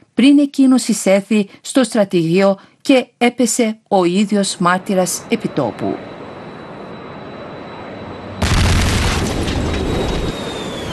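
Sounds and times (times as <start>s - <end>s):
speech: 0.2s - 6.1s
powerful explosion boom: 8.4s - 10.9s.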